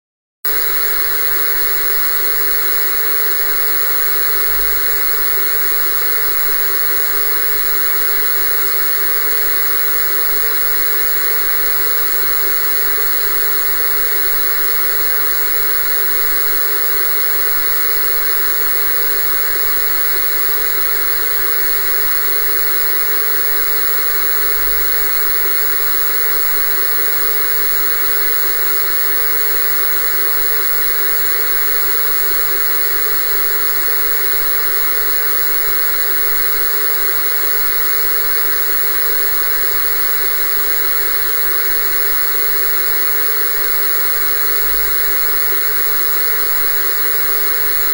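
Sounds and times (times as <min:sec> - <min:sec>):
TV static: 0:00.5 - 0:47.8.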